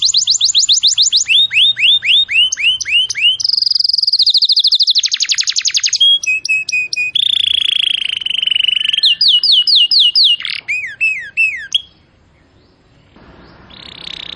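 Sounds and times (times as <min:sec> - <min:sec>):
canary singing in cengkok song style: 0:00.0 - 0:14.3.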